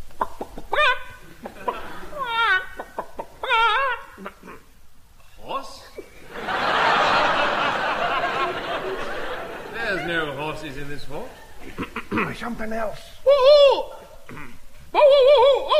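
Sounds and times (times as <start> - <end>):
person imitating chicken clucking: 0.0 - 4.8, 11.6 - 12.4, 13.2 - 15.7
laughter: 0.7 - 4.3, 6.2 - 12.5
speech: 12.4 - 13.7.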